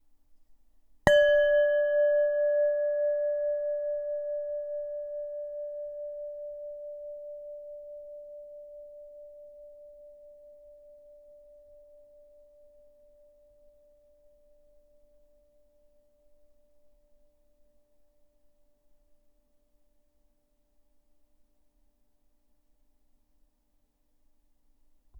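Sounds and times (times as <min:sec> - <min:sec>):
singing bowl: 0:01.1 - 0:17.4.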